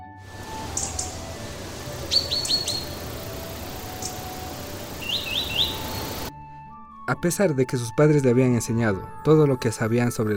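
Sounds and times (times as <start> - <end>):
birds chirping in a forest: 0.2 - 6.3
steady outdoor hiss: 0.2 - 6.3
speech: 7.1 - 10.3.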